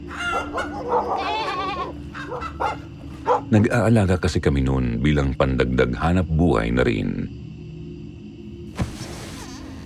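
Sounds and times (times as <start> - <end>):
chickens clucking: 0.0 - 3.5
speech: 0.5 - 1.4, 3.5 - 7.5
goats bleating: 1.0 - 2.0.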